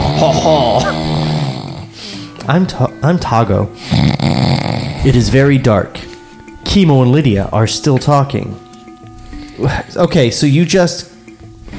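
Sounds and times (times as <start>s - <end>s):
person imitating light snoring: 0.0s - 2.2s, 3.8s - 5.5s
speech: 2.5s - 6.1s, 6.7s - 8.6s, 9.6s - 11.1s.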